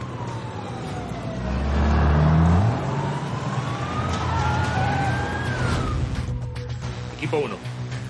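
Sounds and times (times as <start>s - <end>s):
armored police vehicles rumbling and revving: 0.0s - 6.3s
faint siren wailing: 0.0s - 6.9s.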